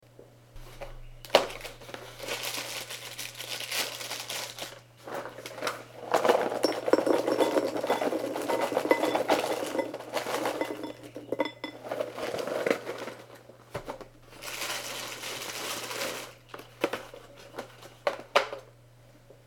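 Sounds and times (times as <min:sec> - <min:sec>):
shredded wheat cereal: 0:01.7 - 0:13.4, 0:14.3 - 0:16.4.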